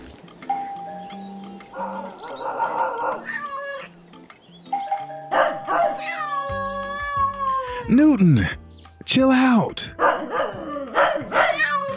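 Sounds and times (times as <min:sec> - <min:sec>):
cat making loud bark-like calls: 0:01.8 - 0:03.9, 0:05.4 - 0:07.6, 0:10.0 - 0:11.9
cat whining with strained tones: 0:03.0 - 0:03.9, 0:05.7 - 0:07.7, 0:10.6 - 0:11.9
speech: 0:07.9 - 0:10.0.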